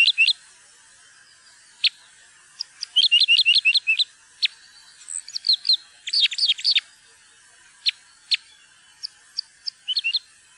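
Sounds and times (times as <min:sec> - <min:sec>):
Parrot crossbill hard clipped chup calls: 0:00.0 - 0:00.4, 0:01.8 - 0:06.9, 0:07.8 - 0:10.3.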